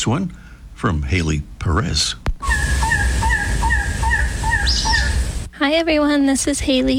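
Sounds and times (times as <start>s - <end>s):
speech: 0.0s - 2.3s, 5.6s - 6.9s
brief higher chirp from another bird: 2.4s - 5.5s
coppery-tailed trogon hoarse croaking calls near its nesting spot in Madera Canyon: 2.4s - 5.5s.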